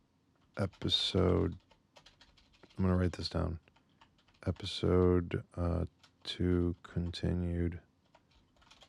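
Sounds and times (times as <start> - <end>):
notes being typed on a computer keyboard: 0.5 - 5.2, 5.9 - 7.3, 8.1 - 8.8
speech: 0.6 - 1.6, 2.8 - 3.7, 4.5 - 7.9.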